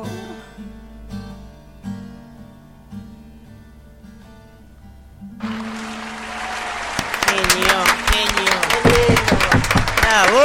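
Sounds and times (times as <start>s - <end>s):
sustained musical tones: 5.4s - 8.8s
crowd applauding: 5.4s - 10.4s.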